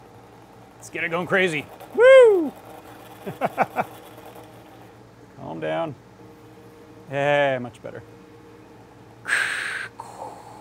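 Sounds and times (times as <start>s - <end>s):
speech: 0.8s - 2.6s, 3.2s - 4.0s, 5.4s - 6.0s, 7.1s - 8.2s
mechanical breathing exhale: 9.2s - 10.6s
soft trailing puff of air: 9.2s - 10.6s.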